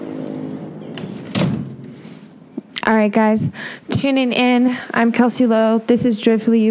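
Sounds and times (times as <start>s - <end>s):
outdoor traffic of many cars rumbling: 0.0s - 4.6s
speech: 2.9s - 6.6s.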